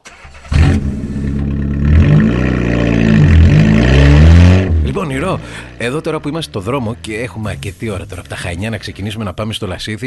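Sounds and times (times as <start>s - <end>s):
car engine cranking, revving and pulling away on a sunny day in Greece: 0.0s - 7.8s
speech: 5.3s - 10.0s.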